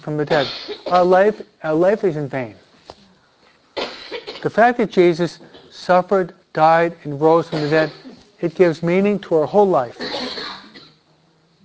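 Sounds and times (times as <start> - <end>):
speech: 0.0 - 2.6, 4.4 - 10.0
man coughing: 0.3 - 1.1, 7.4 - 8.2, 10.0 - 11.0.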